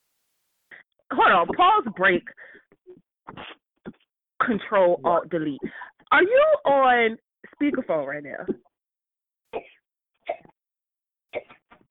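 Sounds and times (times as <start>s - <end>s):
speech: 1.1s - 3.6s, 4.4s - 8.7s
person coughing harshly: 11.3s - 11.6s.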